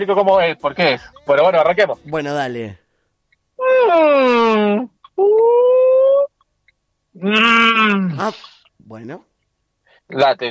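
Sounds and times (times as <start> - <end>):
speech: 0.0 - 2.8, 3.7 - 5.6, 7.2 - 9.3, 10.1 - 10.4
person imitating a whale call: 3.6 - 6.3, 7.2 - 8.2.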